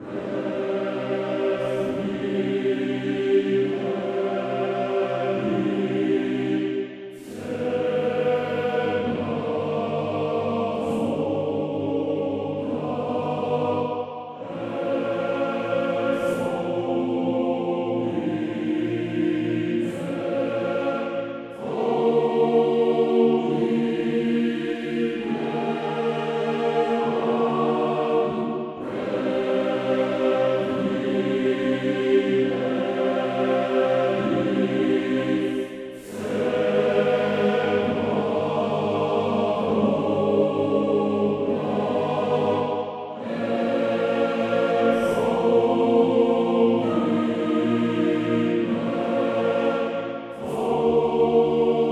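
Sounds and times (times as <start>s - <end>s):
choir ambience from a game: 0.0s - 51.8s.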